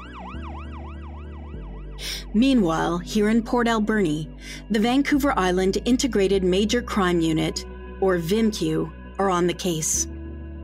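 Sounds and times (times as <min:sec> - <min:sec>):
ambulance siren wailing: 0:00.0 - 0:02.3
speech: 0:02.0 - 0:10.1.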